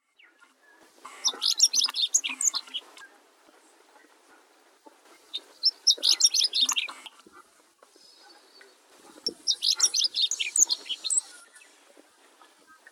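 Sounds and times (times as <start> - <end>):
Chestnut-eared bunting singing: 0.0 - 3.2, 5.2 - 7.1, 7.9 - 11.8.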